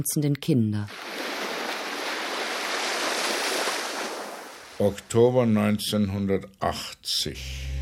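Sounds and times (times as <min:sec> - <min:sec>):
speech: 0:00.0 - 0:01.0, 0:04.8 - 0:07.7
sea waves washing onto a beach: 0:00.9 - 0:04.8.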